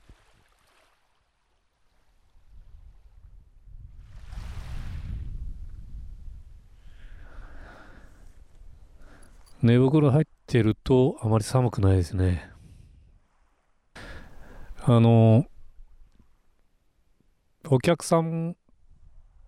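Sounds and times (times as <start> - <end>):
soft ocean waves washing onto a shore at night in winter: 0.0 - 9.6, 12.6 - 16.6
speech: 9.6 - 12.5, 14.9 - 15.5, 17.7 - 18.6.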